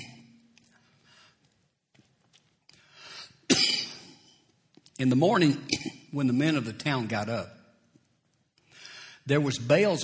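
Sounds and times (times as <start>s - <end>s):
loud cough: 0.0s - 0.2s, 3.5s - 4.4s, 5.6s - 6.1s
speech: 5.0s - 7.6s, 9.3s - 10.0s.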